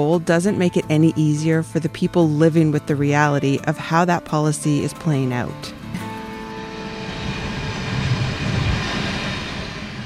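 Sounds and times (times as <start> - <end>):
speech: 0.0 - 5.8
heavy low rumble with broad mechanical roar: 5.9 - 10.0.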